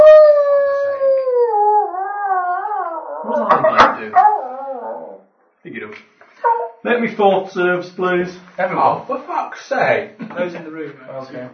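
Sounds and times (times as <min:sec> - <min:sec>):
long mournful beastly howl: 0:00.0 - 0:05.2
speech: 0:05.6 - 0:11.5.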